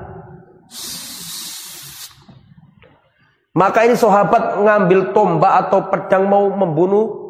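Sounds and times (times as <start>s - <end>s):
voice imitating a snake's hiss: 0.7s - 2.3s
speech: 3.6s - 7.2s.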